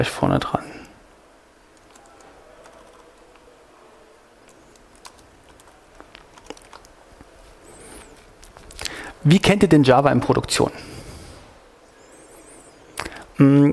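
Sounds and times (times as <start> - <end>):
speech: 0.0 - 0.8, 9.2 - 10.9, 13.4 - 13.7
typing on a computer keyboard: 1.7 - 3.5, 4.4 - 7.0.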